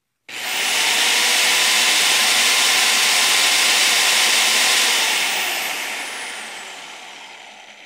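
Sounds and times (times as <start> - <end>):
drill driver: 0.3 - 7.8.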